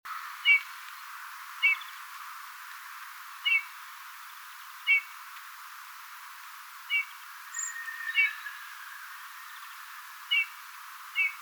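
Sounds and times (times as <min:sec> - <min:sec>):
steady hiss: 0:00.1 - 0:11.3
Eurasian bullfinch Pyrrhula pyrrhula piping calls: 0:03.4 - 0:03.8, 0:06.9 - 0:11.3.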